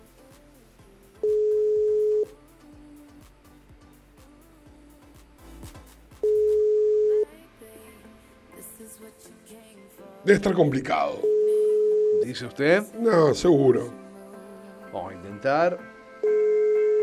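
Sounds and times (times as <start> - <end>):
telephone ringing tone of a call to an administration office: 1.2 - 2.3, 6.2 - 7.3, 11.2 - 12.4, 16.2 - 17.0
speech: 10.3 - 11.3, 12.3 - 14.0, 15.1 - 15.9.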